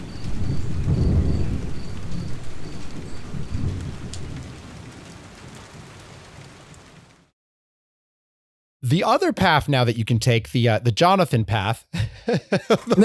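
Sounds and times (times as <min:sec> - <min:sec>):
deep rolling thunder echoing across a grassy plain: 0:00.0 - 0:07.2
steady rain: 0:00.0 - 0:07.3
speech: 0:08.9 - 0:13.0
laughter: 0:11.9 - 0:13.0.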